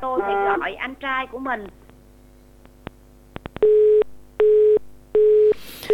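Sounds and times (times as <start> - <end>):
speech: 0.1 - 1.8
telephone busy tone after call line goes dead: 3.6 - 5.9.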